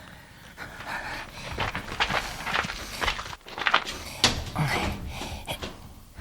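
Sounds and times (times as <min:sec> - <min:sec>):
heavy breathing: 0:00.0 - 0:06.0
handle of a locked staff-only door jiggling and rattling: 0:02.2 - 0:06.1.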